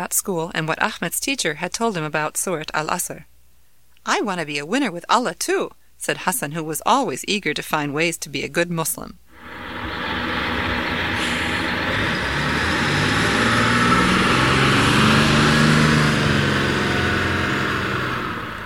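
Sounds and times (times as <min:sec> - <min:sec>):
speech: 0:00.0 - 0:03.3, 0:04.0 - 0:09.7
bus engine rumbling as it stops at a bus stop: 0:09.4 - 0:18.6
road hiss: 0:09.4 - 0:18.6.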